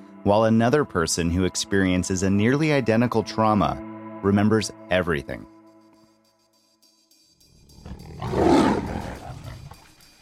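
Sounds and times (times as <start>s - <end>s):
speech: 0.2s - 5.5s
lion's deep roar: 7.8s - 9.8s.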